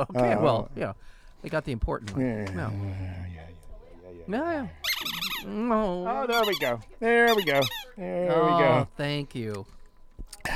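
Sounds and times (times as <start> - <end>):
speech: 0.0 - 3.6, 4.2 - 4.8, 5.4 - 9.8
squeaky toy squeezed by a dog: 4.8 - 5.6, 6.3 - 8.0.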